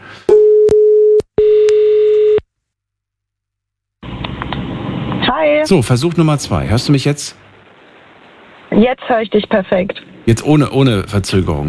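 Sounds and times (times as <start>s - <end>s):
steady low electronic phone line tone while calling back: 0.3s - 2.4s
hiss of phone line noise: 4.0s - 11.6s
speech: 5.6s - 7.4s, 8.8s - 11.6s.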